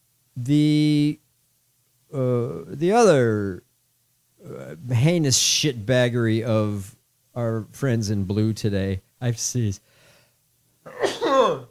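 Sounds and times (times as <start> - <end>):
speech: 0.4 - 1.2, 2.1 - 3.6, 4.5 - 9.9
loud sneeze: 10.9 - 11.6.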